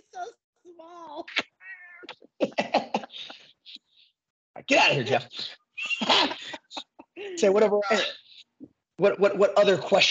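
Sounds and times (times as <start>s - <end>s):
cat meowing: 1.5s - 2.1s
laughter: 2.4s - 3.8s, 4.7s - 8.4s
speech: 4.7s - 6.3s, 7.4s - 8.2s, 9.0s - 10.0s.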